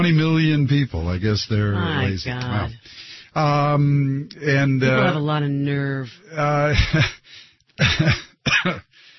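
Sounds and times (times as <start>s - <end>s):
speech: 0.0s - 7.2s, 7.8s - 8.9s
person coughing: 7.8s - 8.9s.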